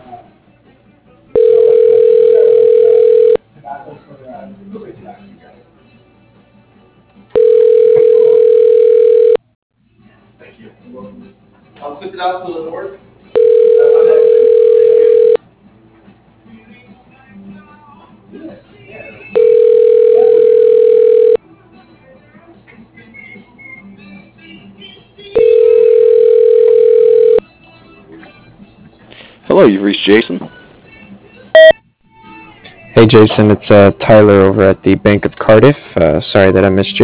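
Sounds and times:
phone call ringing tones while being transferred to voicemail: 1.4 - 3.4, 7.4 - 9.4, 13.4 - 15.4, 19.4 - 21.4, 25.4 - 27.4, 31.6 - 31.8
speech: 29.6 - 30.5, 33.0 - 37.0.

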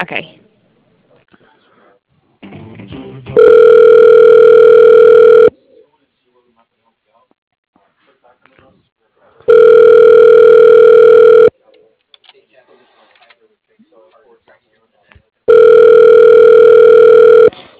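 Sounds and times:
telephone ringback tone as a call is transferred to voicemail: 3.4 - 5.5, 9.5 - 11.5, 15.5 - 17.5.

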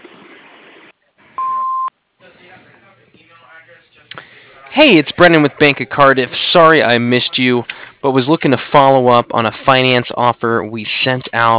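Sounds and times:
answering machine beep: 1.4 - 1.9
speech of recorded greeting and caller: 2.2 - 11.5
speech: 4.8 - 11.5.

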